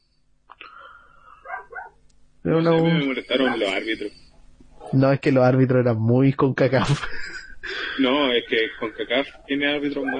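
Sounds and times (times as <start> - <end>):
dog barking hoarsely: 1.4 - 2.0, 3.4 - 3.8
speech: 2.4 - 4.2, 4.9 - 10.1
laughter: 6.8 - 10.1.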